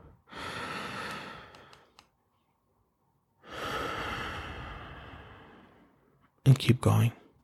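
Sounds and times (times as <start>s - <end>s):
deep breath: 0.0s - 2.1s, 3.4s - 6.2s
speech: 6.5s - 7.2s.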